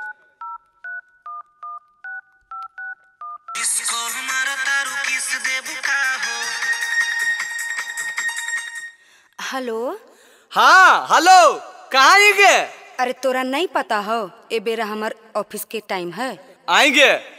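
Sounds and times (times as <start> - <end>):
telephone keypad tones dialing a call: 0.0 - 3.6
loud busy music: 3.6 - 8.8
speech: 9.5 - 17.3.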